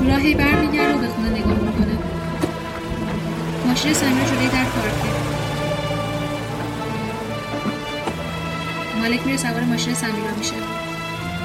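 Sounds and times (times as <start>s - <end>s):
soft knocks: 0.0s - 3.6s
steady rain falling outside a house: 0.0s - 11.4s
speech: 0.2s - 1.4s, 3.8s - 5.3s, 9.0s - 10.9s.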